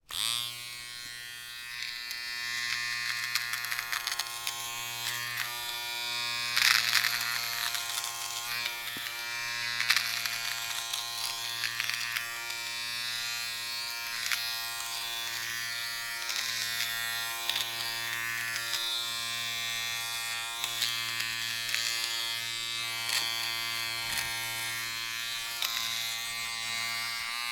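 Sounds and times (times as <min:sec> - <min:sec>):
household nasal hair trimmer switching on and off: 0:00.0 - 0:27.5.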